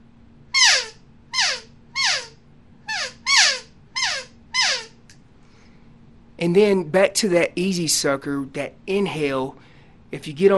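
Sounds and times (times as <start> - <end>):
elk calf call blown on an open reed call: 0.6 - 4.9
speech: 6.4 - 10.5.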